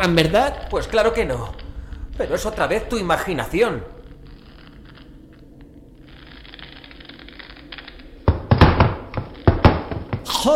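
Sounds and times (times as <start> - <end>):
speech: 0.0 - 1.6, 2.2 - 4.0
wooden knocks and thuds of someone tripping over a chair lying on the floor: 8.3 - 10.4.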